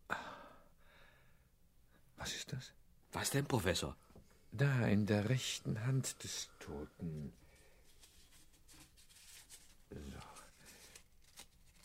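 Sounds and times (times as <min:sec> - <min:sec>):
speech: 0:02.5 - 0:07.4, 0:09.9 - 0:10.3
small scrap of torn paper crinkling as it is removed from a hand: 0:07.6 - 0:11.8.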